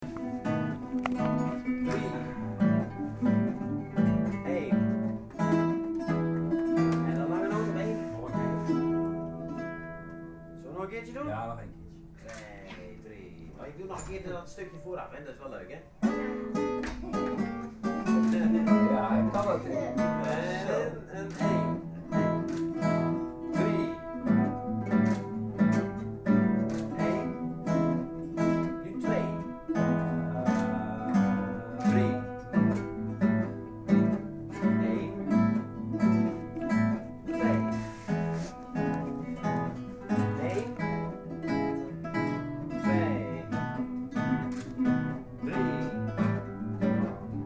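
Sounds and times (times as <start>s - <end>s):
guitar playing blues: 0.0s - 15.1s, 15.9s - 47.4s.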